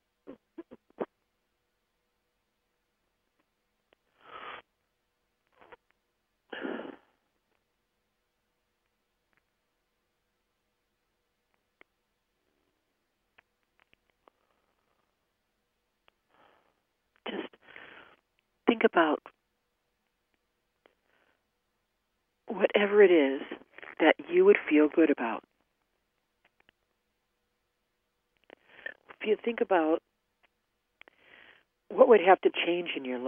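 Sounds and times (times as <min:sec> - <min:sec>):
person coughing in short harsh bursts: 0:06.5 - 0:07.1, 0:17.3 - 0:17.6
speech: 0:18.7 - 0:19.3, 0:22.6 - 0:25.5, 0:29.2 - 0:30.0, 0:31.9 - 0:33.2.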